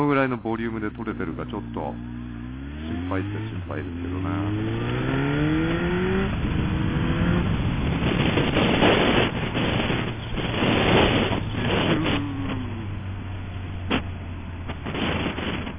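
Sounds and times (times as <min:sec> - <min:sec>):
speech: 0:00.0 - 0:02.3, 0:02.9 - 0:05.2
continuous low engine rumble: 0:00.0 - 0:15.7
cars rushing past on a road: 0:02.0 - 0:15.7.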